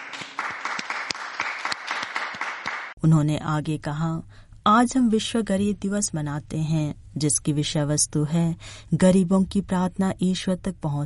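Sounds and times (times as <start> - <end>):
crowd clapping at a beatification ceremony: 0.0 - 3.0
speech: 3.0 - 11.0.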